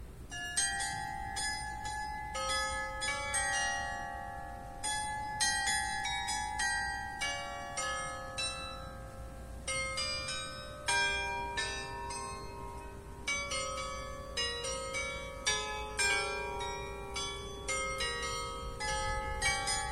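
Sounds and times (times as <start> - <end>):
church bells: 0.3 - 19.9.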